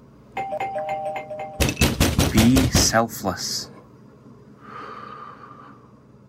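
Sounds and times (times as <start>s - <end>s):
electronic doorbell pressed with an elbow ringing: 0.4s - 1.8s
speech: 2.3s - 3.7s.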